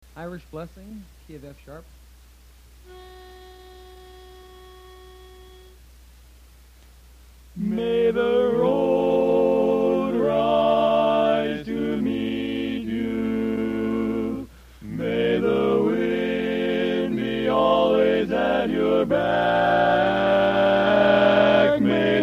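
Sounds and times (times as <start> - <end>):
chorus singing a blessing: 7.6 - 22.2.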